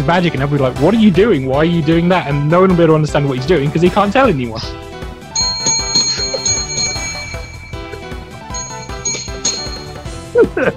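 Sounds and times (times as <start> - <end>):
speech: 0.0 - 4.9
dropped bell ringing with bright metallic strikes: 5.4 - 10.1.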